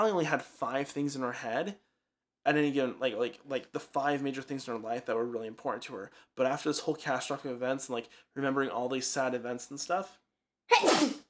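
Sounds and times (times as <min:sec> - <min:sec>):
speech: 0:00.0 - 0:11.2
sharp breathy sneeze: 0:10.7 - 0:11.2.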